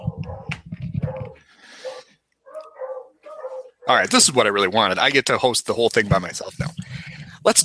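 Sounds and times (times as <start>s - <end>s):
dogs barking in a flurry of yaps: 0.0s - 4.1s
speech: 3.9s - 6.8s, 7.4s - 7.6s.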